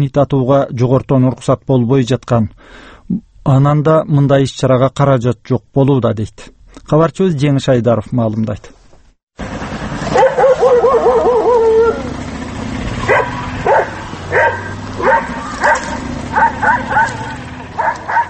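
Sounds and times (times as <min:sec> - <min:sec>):
speech: 0:00.0 - 0:08.8
stray dog whining and yelping in a street: 0:10.1 - 0:12.1, 0:13.0 - 0:18.2.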